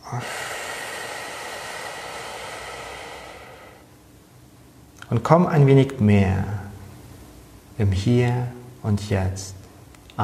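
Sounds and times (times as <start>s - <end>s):
deep breath in and out during a guided meditation: 0.0s - 4.1s
speech: 0.1s - 0.5s, 5.1s - 6.6s, 7.8s - 9.6s.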